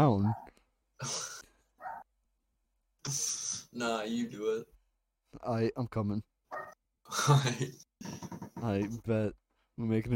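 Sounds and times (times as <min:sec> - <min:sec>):
speech: 0:00.0 - 0:01.4, 0:03.1 - 0:10.1
dog barking: 0:00.2 - 0:00.5, 0:01.8 - 0:02.1, 0:06.5 - 0:06.8.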